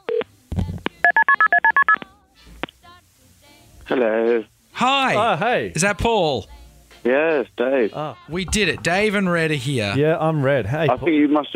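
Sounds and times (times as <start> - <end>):
telephone keypad dialing tones: 1.0 - 2.0
speech: 3.9 - 11.5.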